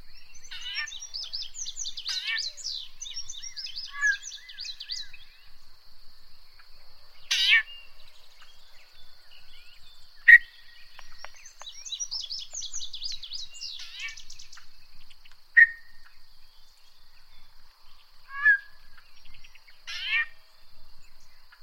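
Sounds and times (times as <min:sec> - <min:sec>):
yellow-breasted chat Icteria virens song: 0:00.0 - 0:05.8, 0:06.4 - 0:21.6.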